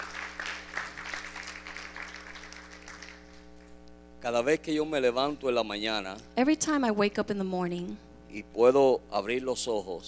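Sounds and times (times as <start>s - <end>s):
audience applauding: 0.0s - 3.7s
constant low hum: 0.0s - 10.0s
speech: 4.2s - 10.0s.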